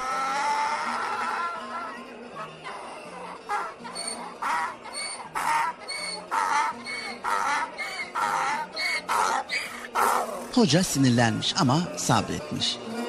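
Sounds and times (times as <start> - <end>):
donkey braying loudly: 0.0 - 10.6
speech: 10.6 - 12.9.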